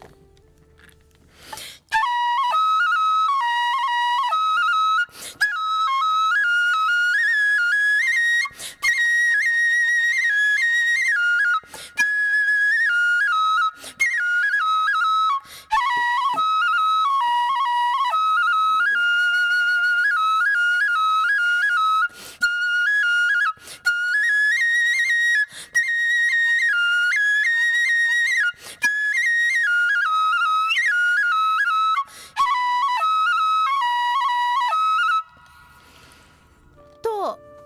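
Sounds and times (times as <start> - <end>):
bamboo Japanese festival flute playing a simple melodic phrase: 0.0 - 37.6
flute player breathing: 0.4 - 2.0, 5.0 - 5.6, 8.3 - 9.0, 11.4 - 12.3, 13.6 - 14.2, 15.2 - 16.1, 22.0 - 22.7, 23.4 - 24.1, 25.3 - 25.9, 28.4 - 29.0, 31.9 - 32.6, 35.3 - 36.8.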